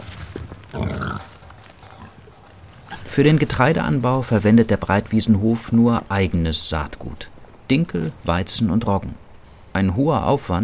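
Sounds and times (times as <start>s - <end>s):
pig snuffling: 0.0s - 9.7s
pig grunting in an outdoor run on a farm: 0.7s - 3.3s
speech: 3.2s - 9.2s, 9.8s - 10.6s.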